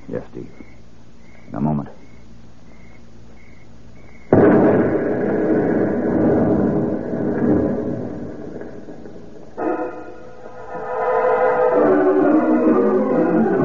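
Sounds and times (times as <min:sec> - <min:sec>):
steady droning tone: 0:00.0 - 0:13.6
speech: 0:00.1 - 0:00.8, 0:01.5 - 0:02.1
heavy rumbling and crackling after explosion: 0:03.9 - 0:13.6
truck carrying explosives exploding on a road: 0:04.3 - 0:13.6.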